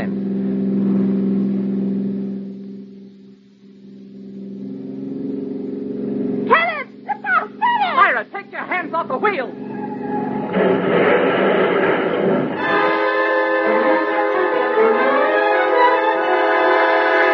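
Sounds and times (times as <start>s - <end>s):
car engine accelerating: 0.0s - 17.3s
high whining voice-like sounds: 6.4s - 10.6s.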